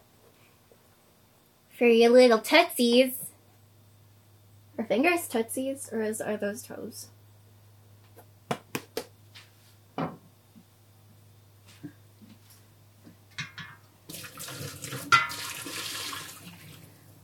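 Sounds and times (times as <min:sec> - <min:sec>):
speech: 0:01.8 - 0:03.2, 0:04.8 - 0:07.2
tap water running while water spinach is washed: 0:14.1 - 0:17.0.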